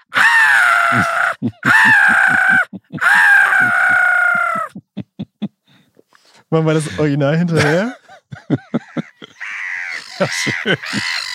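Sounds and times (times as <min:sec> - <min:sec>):
human voice imitating black-headed gull screeching: 0:00.1 - 0:04.7, 0:09.4 - 0:11.3
laughter: 0:00.8 - 0:05.6, 0:06.8 - 0:11.3
speech: 0:00.9 - 0:02.7, 0:06.5 - 0:08.7, 0:10.2 - 0:11.3.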